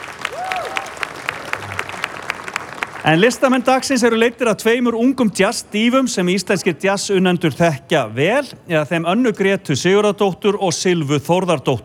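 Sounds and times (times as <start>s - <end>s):
sharp loud claps: 0.0s - 3.4s
audience applause at an outdoor summer jazz event: 0.0s - 4.0s
speech: 3.0s - 11.8s.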